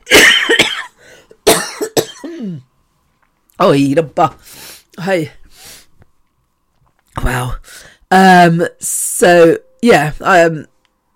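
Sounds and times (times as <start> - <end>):
harsh coughing: 0.0 - 2.6
speech: 3.6 - 5.4, 7.2 - 10.7.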